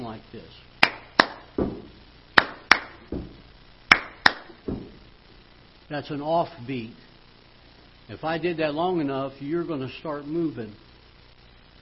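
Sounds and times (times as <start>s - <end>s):
speech: 0.2s - 0.8s, 5.9s - 7.0s, 8.1s - 10.8s
sharp hand claps: 0.8s - 3.3s, 3.9s - 4.9s
dull low foot stomps: 0.8s - 5.2s.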